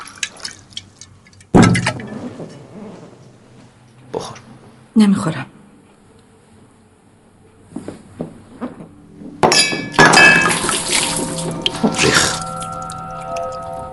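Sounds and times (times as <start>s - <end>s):
water dripping: 0.0s - 2.0s, 10.2s - 13.9s
metal container clattering onto a hard floor: 1.2s - 2.3s, 9.5s - 13.9s
speech: 5.0s - 5.5s.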